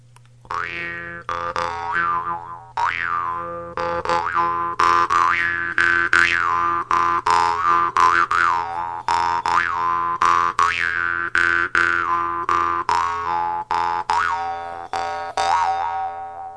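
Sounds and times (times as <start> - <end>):
modern jaw harp from Tuva twanging: 0.5 - 16.5.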